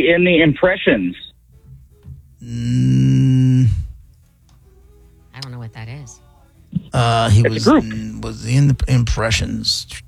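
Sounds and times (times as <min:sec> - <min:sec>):
speech: 0:00.0 - 0:01.3, 0:02.4 - 0:03.8, 0:05.4 - 0:06.3, 0:06.9 - 0:10.0
person imitating a donkey bray: 0:02.4 - 0:04.0, 0:06.8 - 0:08.6.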